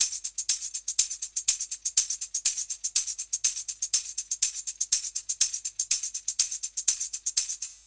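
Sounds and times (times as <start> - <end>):
tambourine: 0.0 - 7.8.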